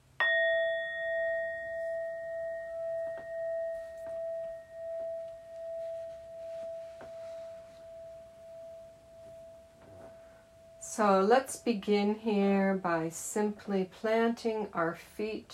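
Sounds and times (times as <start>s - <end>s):
meditation bell struck to begin mindful movements: 0.0s - 11.2s
speech: 11.0s - 15.5s.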